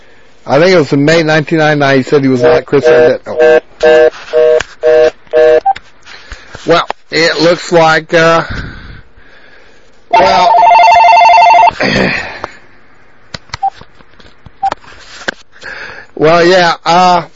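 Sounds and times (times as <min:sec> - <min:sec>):
speech: 0:00.4 - 0:05.0, 0:06.7 - 0:08.7, 0:10.1 - 0:10.6, 0:11.8 - 0:12.2, 0:16.2 - 0:17.3
telephone ringing: 0:10.1 - 0:11.8.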